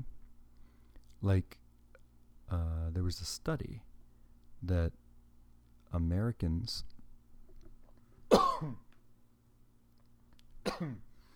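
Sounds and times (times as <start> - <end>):
speech: 1.2 - 1.6, 2.5 - 3.9, 4.6 - 5.0, 5.9 - 7.0, 8.6 - 8.8, 10.7 - 11.1
person coughing harshly: 8.3 - 8.9, 10.6 - 11.1.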